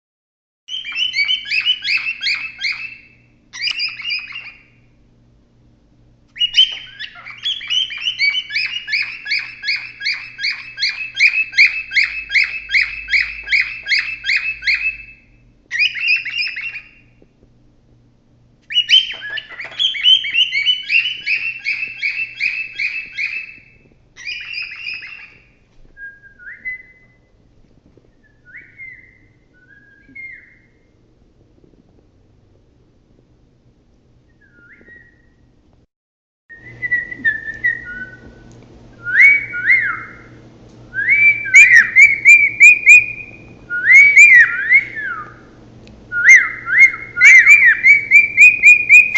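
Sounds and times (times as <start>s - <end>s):
male cockatiel whistling: 0.7s - 4.8s, 6.4s - 17.1s, 18.7s - 27.3s, 28.2s - 30.8s, 34.3s - 35.4s, 36.5s - 45.5s, 46.1s - 49.1s.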